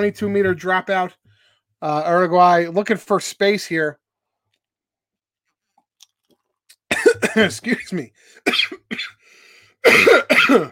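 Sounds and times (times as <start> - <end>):
speech: 0.0 - 1.2, 1.8 - 4.0, 7.1 - 9.2, 9.8 - 10.6
male sports commentator clearing his throat: 6.9 - 9.2, 9.8 - 10.6
male sports commentator coughing during rugby match broadcast: 6.9 - 9.2, 9.8 - 10.6.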